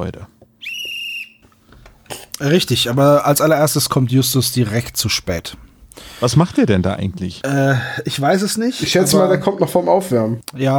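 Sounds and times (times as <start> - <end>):
speech: 0.0 - 0.4, 2.4 - 10.7
referee's shrill whistle blast signaling kickoff: 0.6 - 1.4.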